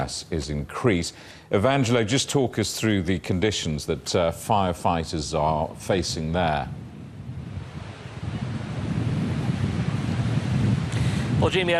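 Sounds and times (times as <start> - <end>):
speech: 0.0 - 6.8, 11.4 - 11.7
heavy wind buffeting the microphone: 4.3 - 11.7
high sea waves churning: 6.6 - 11.7.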